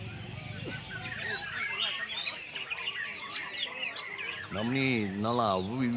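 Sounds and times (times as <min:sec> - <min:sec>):
songbirds singing in a competition: 0:00.0 - 0:05.9.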